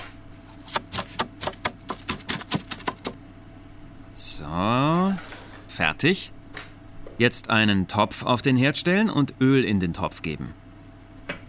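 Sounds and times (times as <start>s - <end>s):
vegetables being chopped into small pieces with a knife: 0.5s - 3.2s
speech: 4.4s - 6.4s, 7.2s - 10.6s.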